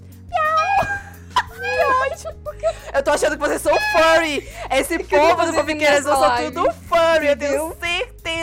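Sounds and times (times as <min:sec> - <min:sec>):
person imitating a cat meow: 0:00.3 - 0:01.1
laughter: 0:00.6 - 0:07.6
speech: 0:02.6 - 0:08.0.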